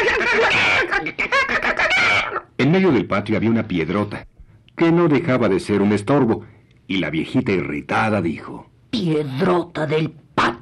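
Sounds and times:
hens cackling: 0.0s - 2.5s
speech: 2.6s - 10.6s.

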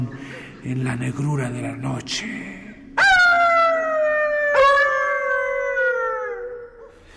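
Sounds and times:
speech: 0.6s - 2.6s
chorus of wolves howling at night in a mountain gorge: 3.0s - 6.9s.

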